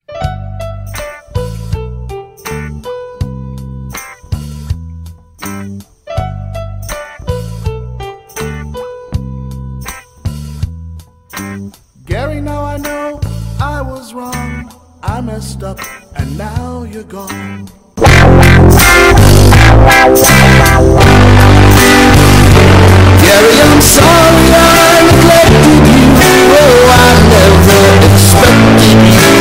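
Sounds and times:
alarm song: 18.0 - 29.4.

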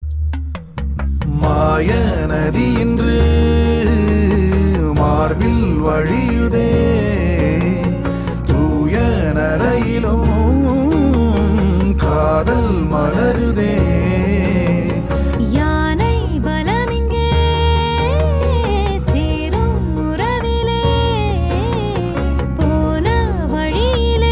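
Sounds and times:
man's voice: 1.2 - 15.5
woman's voice: 15.4 - 24.2.

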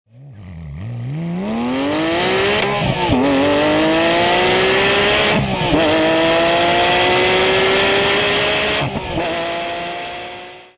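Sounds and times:
Porsche 911 GT3 RS 4.0 accelerating to 300 km h: 0.1 - 10.7.

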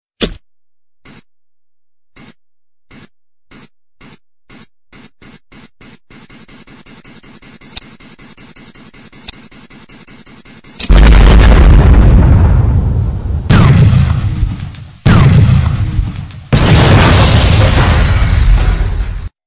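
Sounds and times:
bomb explosion sms ringtone: 10.9 - 19.3.

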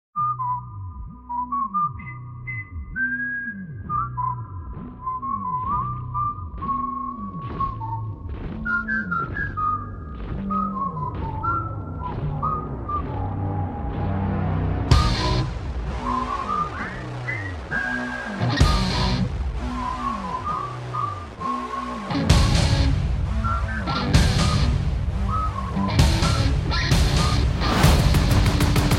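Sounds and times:
whistle: 0.2 - 28.9.

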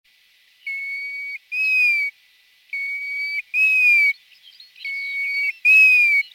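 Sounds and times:
golden plover whistled calls: 0.6 - 2.1, 2.7 - 6.3.

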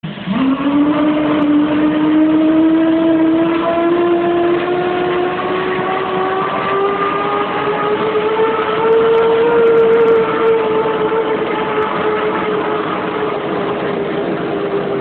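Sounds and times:
F-15 jet engine starting up: 0.0 - 15.0.

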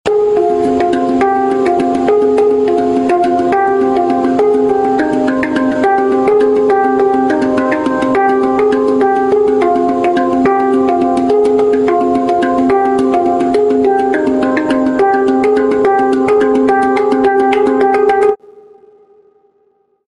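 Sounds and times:
spacedrum ringtone: 0.1 - 18.4.

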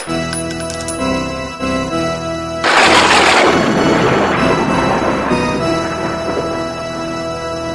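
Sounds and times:
horror sound ringtone: 0.2 - 7.6.

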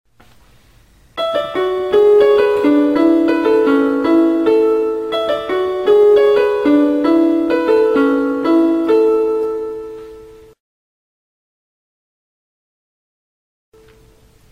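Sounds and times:
blues piano tone: 1.2 - 10.6.

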